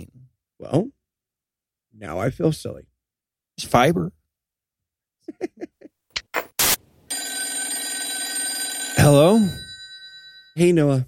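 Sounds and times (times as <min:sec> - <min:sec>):
speech: 0:00.6 - 0:01.0, 0:02.0 - 0:02.9, 0:03.6 - 0:04.2, 0:05.3 - 0:05.7, 0:09.0 - 0:09.6, 0:10.6 - 0:11.0
telephone ringing: 0:07.1 - 0:10.7.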